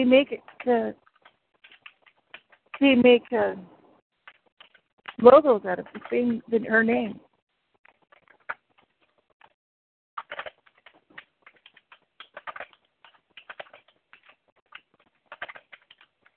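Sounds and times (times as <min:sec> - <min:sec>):
speech: 0:00.0 - 0:01.0, 0:02.8 - 0:03.7, 0:05.2 - 0:07.3
rapid dense keyboard typing: 0:00.0 - 0:03.2, 0:04.2 - 0:07.0, 0:10.2 - 0:16.3.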